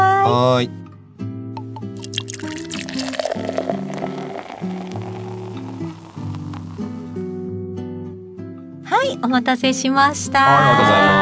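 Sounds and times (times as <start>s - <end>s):
speech: 0.2s - 0.8s, 9.1s - 11.2s
drips: 1.6s - 7.1s
chuhai and highballs pouring into glasses: 1.6s - 7.2s.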